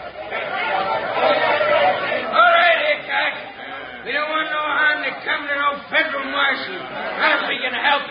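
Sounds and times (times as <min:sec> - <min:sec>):
angry mob shouting outside a jailhouse: 0:00.3 - 0:08.0.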